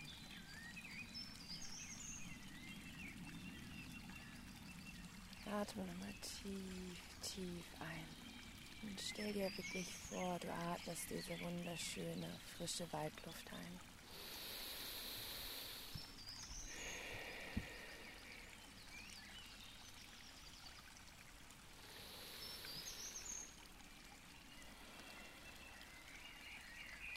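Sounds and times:
bright chirping birdsong: 0:00.0 - 0:20.9, 0:21.7 - 0:27.1
gently rushing forest stream: 0:00.0 - 0:27.1
speech: 0:05.4 - 0:14.4.

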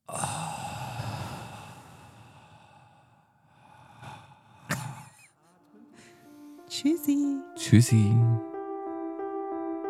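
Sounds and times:
group of people breathing together: 0:00.0 - 0:06.7
speech: 0:06.8 - 0:08.5.

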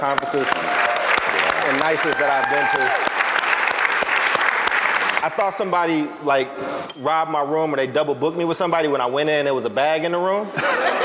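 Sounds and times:
speech: 0:00.0 - 0:00.8, 0:01.6 - 0:03.1, 0:05.2 - 0:11.0
room full of people applauding: 0:00.0 - 0:05.4
laughter: 0:10.4 - 0:11.0.

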